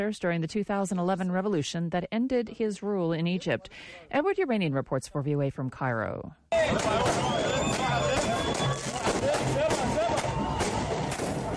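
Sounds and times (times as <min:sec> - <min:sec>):
speech: 0:00.0 - 0:08.2
dense crowd of well-wishers clamoring outside a military hospital: 0:06.5 - 0:11.5
firecrackers launched by a crowd outside a military hospital: 0:06.6 - 0:11.5.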